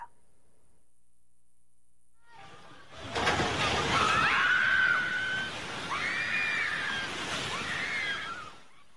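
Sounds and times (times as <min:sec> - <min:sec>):
rushing rumble of a building collapsing: 0:02.3 - 0:08.9
shrill cries: 0:02.3 - 0:08.9
several people screaming in panic: 0:02.4 - 0:08.9.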